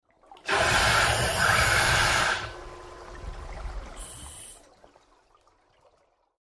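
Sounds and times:
big air release bubbles: 0:00.4 - 0:04.6.

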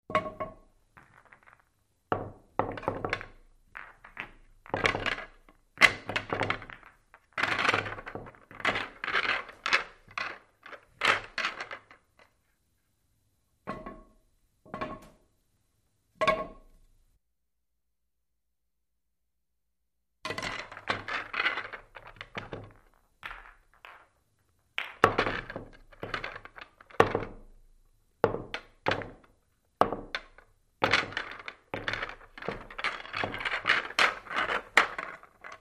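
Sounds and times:
billiard balls racking: 0:00.1 - 0:12.4, 0:20.3 - 0:27.6, 0:28.3 - 0:35.5.

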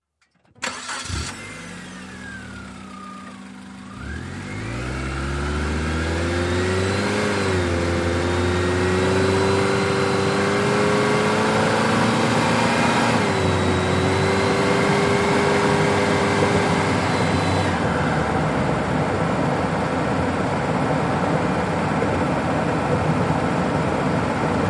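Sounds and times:
compact small car engine accelerating: 0:00.6 - 0:24.6.

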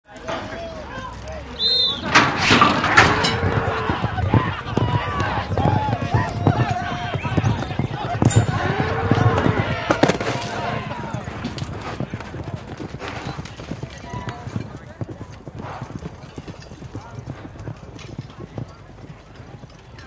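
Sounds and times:
bucking bull at a rodeo: 0:00.2 - 0:14.6.

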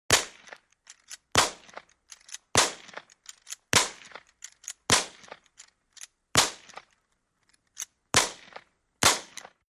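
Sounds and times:
Civil War repeating rifle rapid fire outdoors: 0:01.3 - 0:01.8, 0:02.5 - 0:03.0, 0:03.7 - 0:04.2, 0:04.9 - 0:05.4, 0:06.4 - 0:06.8, 0:08.2 - 0:09.6.

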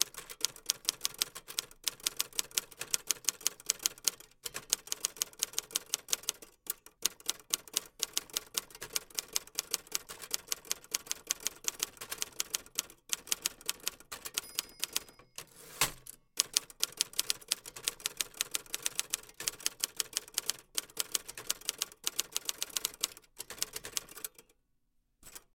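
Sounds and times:
typewriter typing continuously: 0:00.0 - 0:24.5.

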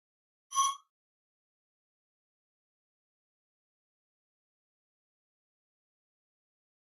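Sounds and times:
pop up electronic whistle: 0:00.5 - 0:00.8.

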